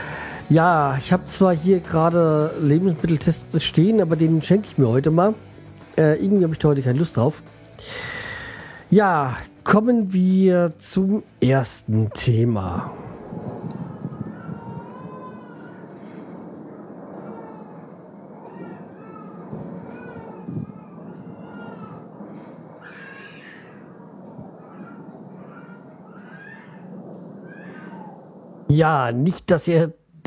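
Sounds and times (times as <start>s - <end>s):
steady hum: 0.0s - 30.2s
speech: 0.5s - 8.1s, 8.9s - 13.1s, 28.8s - 30.2s
infant crying in the neighbourhood: 12.2s - 28.4s.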